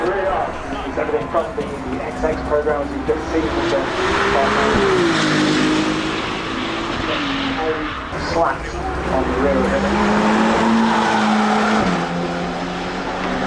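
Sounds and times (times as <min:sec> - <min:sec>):
Ferrari race car engines roaring and shifting gears: 0:00.0 - 0:13.4
faint tire squeal: 0:03.4 - 0:12.2.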